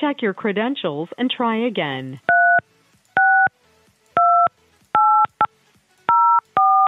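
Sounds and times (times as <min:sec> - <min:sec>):
speech: 0:00.0 - 0:02.3
touch-tone keypad beeps entering an access code into a conference-call line: 0:02.3 - 0:02.6, 0:03.2 - 0:03.5, 0:04.2 - 0:05.5, 0:06.1 - 0:06.8.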